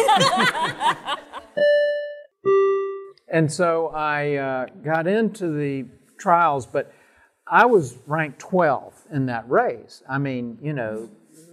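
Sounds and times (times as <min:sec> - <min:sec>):
burst of laughter: 0:00.0 - 0:01.6
speech: 0:00.2 - 0:01.8, 0:03.3 - 0:11.5.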